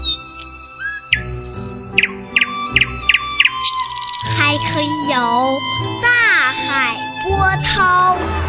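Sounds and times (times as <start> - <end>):
birds chirping and whistling: 0.0 - 5.6
speech: 4.8 - 8.4.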